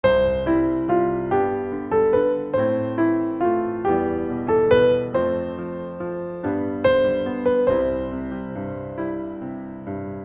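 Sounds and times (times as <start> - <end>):
piano: 0.0 - 10.2.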